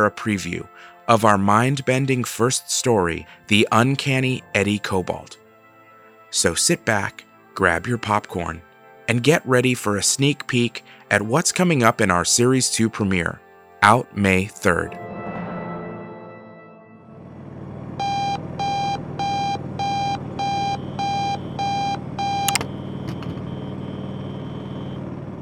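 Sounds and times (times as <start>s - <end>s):
speech: 0.0s - 5.4s, 6.3s - 15.1s
alarm clock beeping with electronic pulses: 18.0s - 22.7s.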